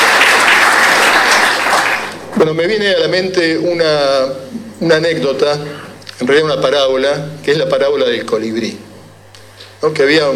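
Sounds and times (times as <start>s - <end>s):
audience applauding at a stage show: 0.0s - 2.3s
speech: 2.4s - 8.8s, 9.8s - 10.3s.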